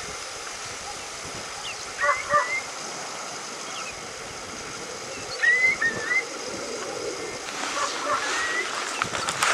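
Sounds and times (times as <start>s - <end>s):
great curlew calling: 0.8s - 4.1s, 4.8s - 9.5s.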